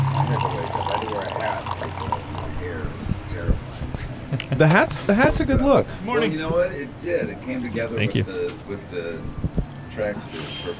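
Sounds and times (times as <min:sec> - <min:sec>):
coffee pouring into a cup: 0:00.0 - 0:03.0
speech: 0:04.6 - 0:10.7.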